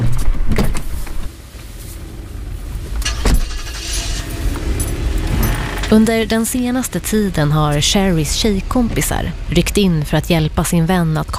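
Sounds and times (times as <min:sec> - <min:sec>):
low steady rumble inside a parked car: 0:01.0 - 0:11.3
brief whirring: 0:02.9 - 0:08.5
speech: 0:05.9 - 0:11.3.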